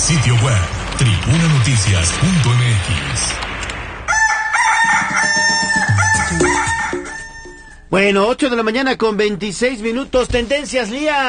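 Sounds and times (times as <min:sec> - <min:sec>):
brief burst of noise: 0:00.0 - 0:07.4
speech: 0:00.1 - 0:03.5, 0:05.2 - 0:06.7, 0:07.9 - 0:11.2
rooster crowing: 0:04.1 - 0:07.9.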